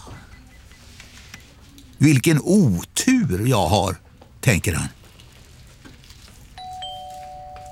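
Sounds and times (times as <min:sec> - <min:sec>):
speech: 0:02.0 - 0:05.0
two-tone ding-dong chime of queue number system: 0:06.6 - 0:07.6.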